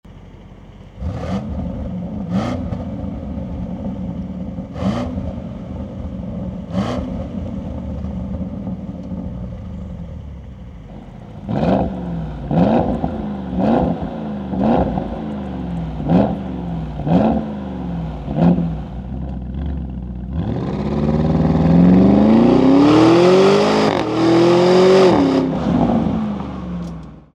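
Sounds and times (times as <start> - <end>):
Audi SQ8 car engine: 0.0 - 27.3.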